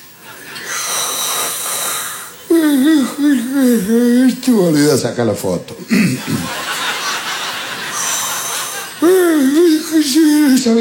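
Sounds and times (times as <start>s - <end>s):
bass drummer yawning during a coronation procession: 2.4s - 5.0s, 5.8s - 6.5s, 9.0s - 10.7s
speech: 3.1s - 6.7s, 9.0s - 10.7s
laughter: 5.8s - 10.7s.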